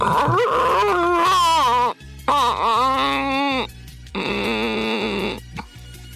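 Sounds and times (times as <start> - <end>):
person imitating whale mating calls: 0.0 - 5.7.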